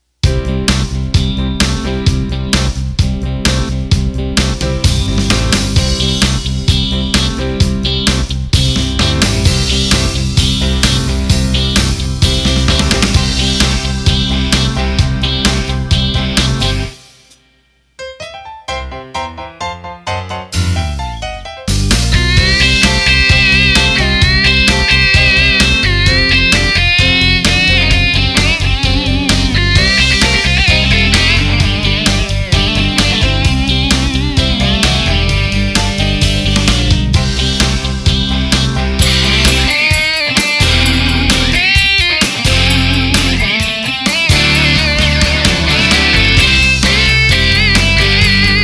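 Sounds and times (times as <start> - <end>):
rock drum beat from an arranger keyboard: 0.2 - 17.4, 20.5 - 48.6.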